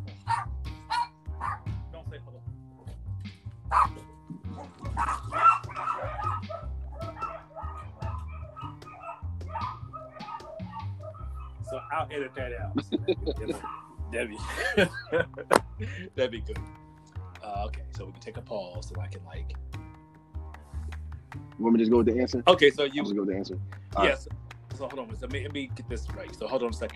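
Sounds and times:
dog barking indoors: 0.2s - 1.7s, 3.7s - 12.0s, 13.5s - 14.0s
laughter: 11.7s - 16.5s
speech: 12.0s - 16.8s, 17.5s - 19.6s, 21.6s - 26.9s.

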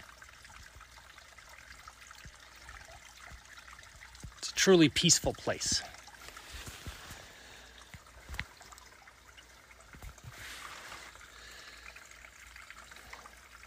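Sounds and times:
water trickling over rocks along a canyon floor: 0.0s - 13.6s
speech: 4.6s - 5.9s.

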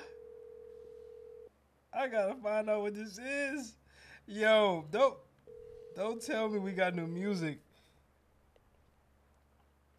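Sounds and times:
telephone ringback tone during a call: 0.0s - 1.5s, 5.5s - 6.2s
speech: 2.0s - 5.3s, 6.0s - 7.6s.

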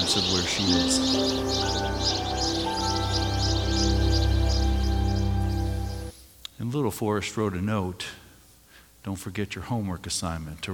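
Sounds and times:
steady low humming drone: 0.0s - 6.1s
birds chirping: 0.0s - 6.7s
speech: 0.1s - 2.2s, 6.8s - 8.2s, 9.0s - 10.7s.

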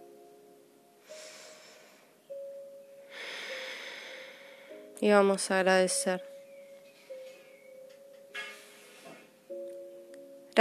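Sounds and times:
soft sustained musical drone: 0.0s - 10.5s
deep breath in and out: 1.0s - 2.2s, 3.1s - 4.9s, 8.5s - 9.5s
speech: 5.0s - 6.3s.

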